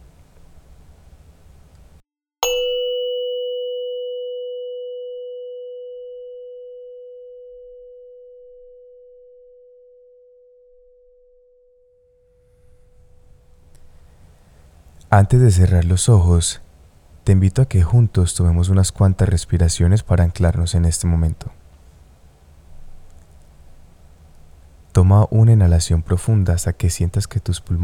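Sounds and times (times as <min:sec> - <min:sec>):
meditation bell ringing: 0:02.4 - 0:14.1
low hum: 0:12.4 - 0:27.8
speech: 0:15.1 - 0:16.6, 0:17.3 - 0:21.6, 0:25.0 - 0:27.8.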